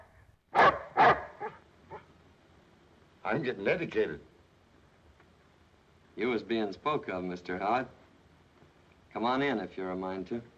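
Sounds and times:
chained dog barking: 0.0 - 2.1
speech: 3.3 - 4.3, 6.2 - 8.0, 9.2 - 10.5.

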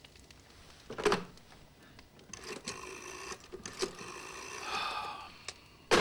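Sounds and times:
faint mechanical whir: 0.0 - 5.9
telephone handset picked up and handled, plastic clicks and rattling clatter: 2.3 - 4.6.

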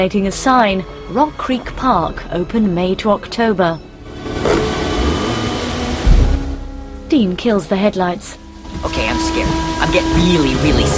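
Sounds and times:
speech: 0.0 - 3.9, 7.1 - 10.9
car engine rumbling as the vehicle rolls up to a barrier: 3.9 - 7.8
low thump: 6.0 - 6.8.

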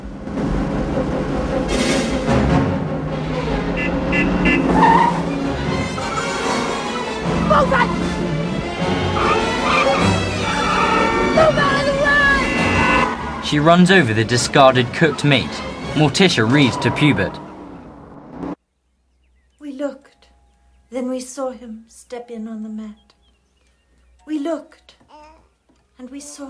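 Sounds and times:
car engine roaring while speeding through traffic: 0.0 - 18.6
road noise: 0.0 - 21.6
tires squealing and skidding: 3.1 - 18.6
speech: 13.5 - 17.4, 20.9 - 23.1, 24.3 - 25.3, 26.0 - 26.4.

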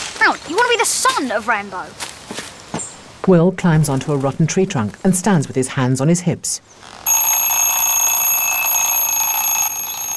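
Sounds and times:
speech: 0.2 - 2.1, 3.2 - 7.1
loud shrill alarm clock ringing with high-pitched electronic buzz: 7.1 - 10.1.

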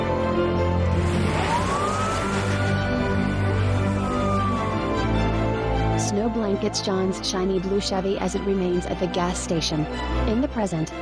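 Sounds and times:
police car engine rumble: 0.0 - 6.0
police car siren sweeping up and down: 0.0 - 8.0
tires churning through gravel and slush: 0.5 - 5.8
speech: 6.1 - 11.0.

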